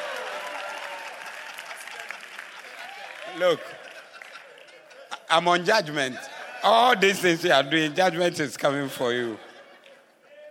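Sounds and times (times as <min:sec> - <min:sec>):
audience applauding: 0:00.0 - 0:05.4
laughter: 0:01.0 - 0:10.4
speech: 0:03.4 - 0:03.8, 0:05.3 - 0:09.5.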